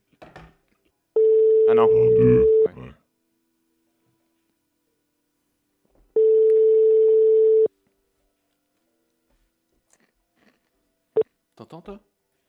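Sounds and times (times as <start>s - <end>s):
electronic phone ringback tone: 1.2s - 2.7s, 6.2s - 7.7s
speech: 1.7s - 3.0s, 11.8s - 12.1s.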